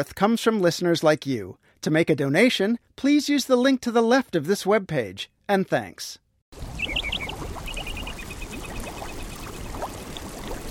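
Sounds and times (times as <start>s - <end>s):
speech: 0.0s - 7.0s
small hot spring bubbling into the Yellowstone River in Yellowstone National Park: 6.6s - 10.6s
high bird chirps: 6.8s - 9.6s.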